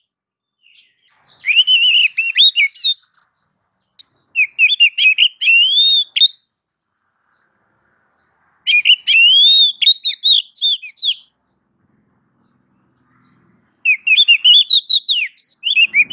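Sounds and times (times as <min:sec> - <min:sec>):
female oriental magpie-robin calling to a male with whistles and chirps: 0:00.6 - 0:06.6, 0:08.1 - 0:11.6, 0:12.4 - 0:16.1.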